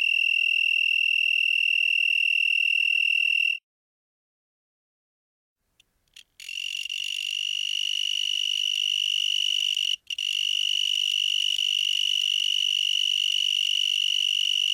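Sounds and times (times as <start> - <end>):
broad-winged tree cricket Oecanthus latipennis trill: 0.0 - 3.6, 6.4 - 14.7.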